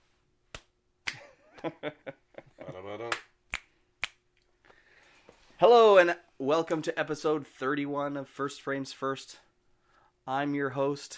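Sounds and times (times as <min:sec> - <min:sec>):
sharp dry clapping sound effects: 0:00.5 - 0:01.3, 0:03.0 - 0:04.2
speech: 0:01.6 - 0:03.1, 0:05.6 - 0:09.4, 0:10.3 - 0:11.1.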